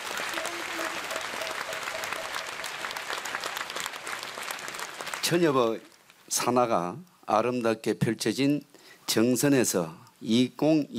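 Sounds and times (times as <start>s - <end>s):
large audience applauding a speaker: 0.0s - 5.9s
speech: 5.3s - 10.9s.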